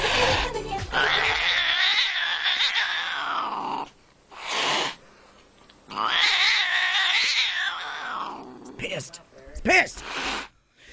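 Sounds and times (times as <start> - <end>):
cat caterwauling and meowing: 0.1 - 5.0, 5.9 - 8.7.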